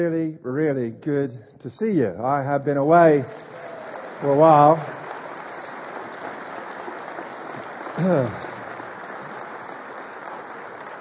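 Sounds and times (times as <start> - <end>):
speech: 0.0 - 5.0, 8.0 - 8.4
crowd applauding a speaker: 2.8 - 10.9
person cheering: 8.0 - 8.6.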